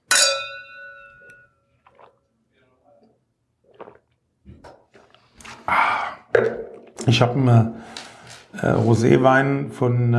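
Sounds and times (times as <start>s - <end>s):
wine glasses clinking in a toast: 0.0s - 2.1s
speech: 6.4s - 7.9s, 8.6s - 10.1s.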